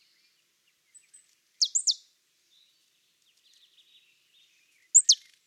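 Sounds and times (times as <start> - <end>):
marsh tit short high downward calls: 1.6 - 2.0, 4.9 - 5.3.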